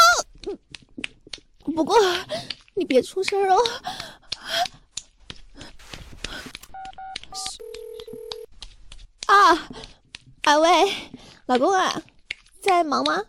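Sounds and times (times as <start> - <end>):
speech: 1.8 - 4.1, 9.4 - 9.8, 10.5 - 13.2
short telephone keypad beeps: 6.7 - 8.5.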